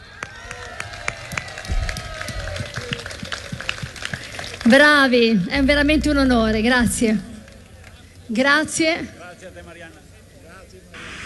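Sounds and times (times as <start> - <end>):
crowd applauding: 0.0 - 5.7, 7.0 - 8.3
speech: 4.7 - 7.3, 8.3 - 10.0
faint tone: 4.7 - 11.0.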